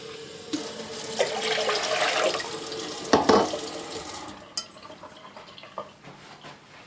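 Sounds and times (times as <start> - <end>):
tap water gushing into a wide saucepan: 0.0 - 6.0
cookware clinking and knocking while handled: 3.1 - 3.6.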